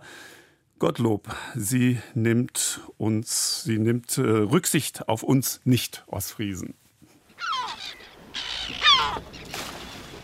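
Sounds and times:
speech: 0.8 - 6.8
gulls calling in a harbour at dawn: 7.3 - 10.2.

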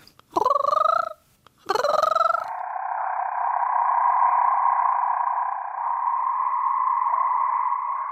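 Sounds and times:
red marbled rain frog buzzing drone: 1.7 - 8.0.

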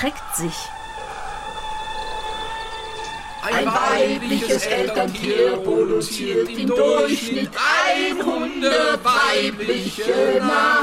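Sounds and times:
speech: 0.0 - 0.8, 3.4 - 10.8
rooster crowing: 0.1 - 4.6.

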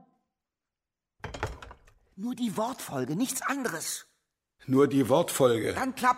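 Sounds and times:
door shutting with a loud thud: 1.2 - 1.8
speech: 2.2 - 6.1.

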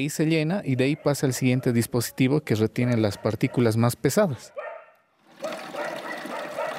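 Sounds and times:
person talking: 0.0 - 4.6
tap water pouring into a basin holding blouses: 5.2 - 6.7.

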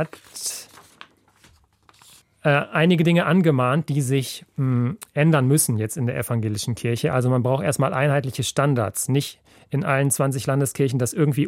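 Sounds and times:
speech: 0.0 - 0.6, 2.4 - 11.4
papers rustling and shuffling: 0.0 - 2.2.

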